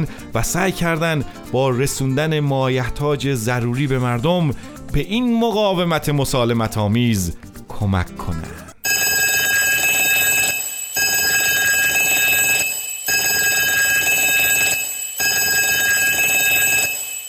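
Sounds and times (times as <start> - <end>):
speech: 0.0 - 8.6
alarm clock ringing: 8.9 - 17.2.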